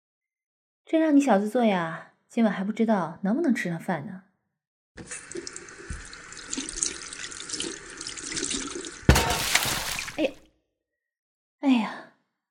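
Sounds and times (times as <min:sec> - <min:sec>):
speech: 0:00.9 - 0:04.3, 0:05.0 - 0:05.5, 0:10.2 - 0:10.4, 0:11.6 - 0:12.1
tap water running over rice: 0:05.0 - 0:10.4.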